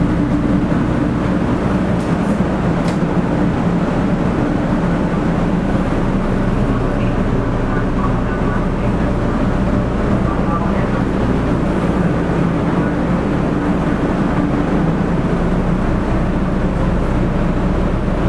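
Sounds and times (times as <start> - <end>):
Shinkansen 500 series bullet train running at speed: 0.0 - 18.2.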